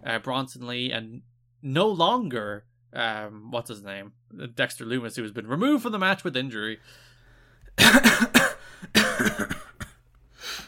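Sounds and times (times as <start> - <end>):
speech: 0.0 - 7.1, 7.8 - 9.7
harsh coughing: 7.8 - 10.0.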